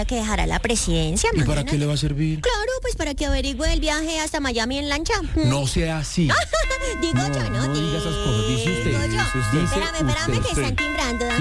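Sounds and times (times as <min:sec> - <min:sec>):
speech: 0:00.0 - 0:11.4
electronic doorbell ringing in a home: 0:06.6 - 0:11.4.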